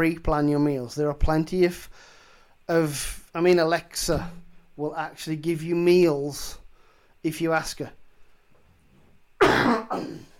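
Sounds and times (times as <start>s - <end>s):
speech: 0.0s - 6.6s, 7.2s - 8.0s, 9.4s - 10.2s
harsh raspy coughs: 9.4s - 10.3s.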